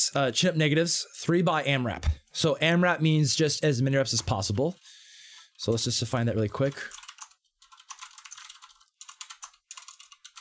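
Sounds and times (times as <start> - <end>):
speech: 0.1 - 4.9, 5.6 - 7.0
typing on a computer keyboard: 6.7 - 10.3.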